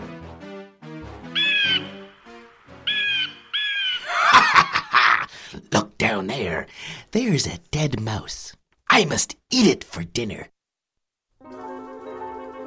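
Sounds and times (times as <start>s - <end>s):
hawk flying by screeching: 1.4s - 2.2s, 2.8s - 4.4s
laughter: 4.0s - 5.3s
speech: 6.8s - 10.5s.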